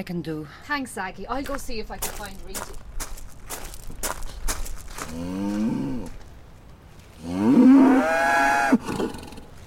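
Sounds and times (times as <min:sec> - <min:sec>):
speech: 0:00.0 - 0:02.9, 0:05.1 - 0:05.7
shuffling steps: 0:01.0 - 0:07.3
cow mooing in distress while giving birth: 0:07.2 - 0:09.0.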